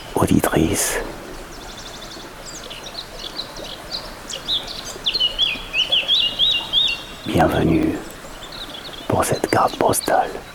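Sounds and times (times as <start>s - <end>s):
birds chirping and trilling in a meadow on a humid grey spring day: 0.0s - 10.5s
soft hiss: 0.0s - 10.5s
speech: 0.2s - 1.2s, 7.3s - 8.1s, 9.1s - 10.5s.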